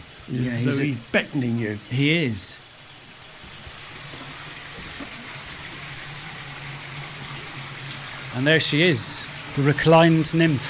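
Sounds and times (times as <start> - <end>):
spring-fed water flowing and splashing in a grotto: 0.0 - 10.6
speech: 0.3 - 2.7, 8.4 - 10.6.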